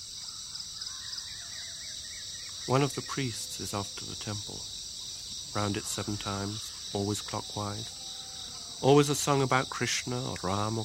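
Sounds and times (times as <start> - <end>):
birds chirping at dawn: 0.0 - 10.8
crows cawing at dawn: 0.2 - 4.1, 4.8 - 9.1
speech: 2.7 - 4.8, 5.5 - 8.0, 8.8 - 10.8.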